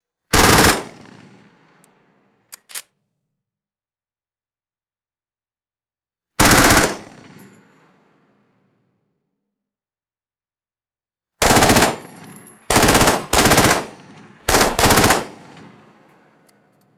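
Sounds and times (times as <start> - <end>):
M4 carbine firing short bursts: 0.3 - 1.1, 6.4 - 7.3, 11.4 - 15.7.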